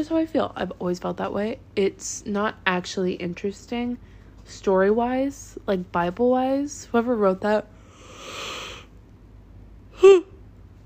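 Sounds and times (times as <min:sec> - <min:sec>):
speech: 0:00.0 - 0:07.7, 0:10.0 - 0:10.3
person yawning: 0:10.0 - 0:10.4.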